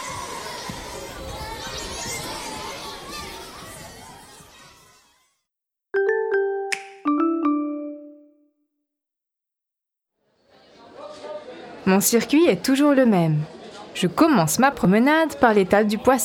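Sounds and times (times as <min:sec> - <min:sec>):
children shouting at a busy outdoor market: 0:00.0 - 0:05.2
ding-dong chime tones: 0:06.0 - 0:08.5
speech: 0:11.9 - 0:16.2.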